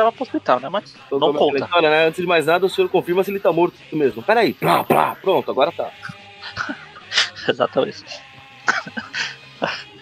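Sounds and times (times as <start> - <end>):
speech: 0.0 - 6.8, 7.4 - 9.9
harsh rasping coughing fit: 4.6 - 5.2, 8.7 - 9.1
laughter: 6.0 - 7.5, 8.6 - 9.9.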